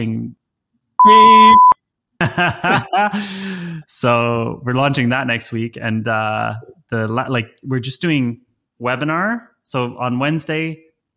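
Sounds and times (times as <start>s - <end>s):
censor bleep tone: 1.0s - 1.8s
speech: 1.0s - 10.8s
laughter: 2.2s - 3.7s.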